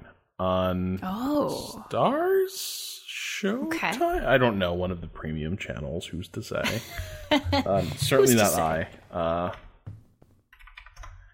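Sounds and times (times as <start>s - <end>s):
speech: 0.4s - 9.6s
laughter: 6.6s - 8.8s
typing on a computer keyboard: 10.5s - 11.3s.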